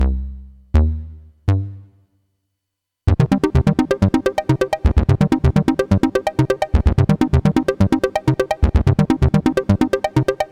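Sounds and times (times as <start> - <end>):
synthesizer arpeggio new age: 3.1 - 10.5.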